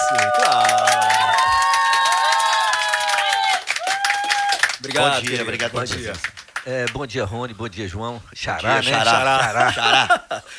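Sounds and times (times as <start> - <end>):
crowd cheering with whoops: 0.0 - 5.7
scattered clapping: 0.0 - 7.0
speech: 4.9 - 10.5
laughter: 8.7 - 10.5.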